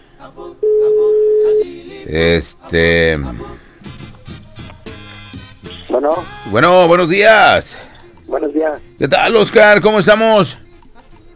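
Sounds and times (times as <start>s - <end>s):
speech: 0.2s - 0.6s, 2.0s - 4.0s, 6.0s - 10.6s
telephone ringback tone on an outgoing call: 0.6s - 1.8s.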